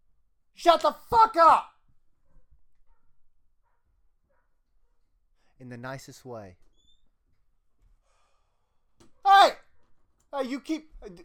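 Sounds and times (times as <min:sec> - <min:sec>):
speech: 0:00.6 - 0:01.7, 0:05.6 - 0:06.6, 0:10.3 - 0:11.2
several dogs barking: 0:02.3 - 0:05.0.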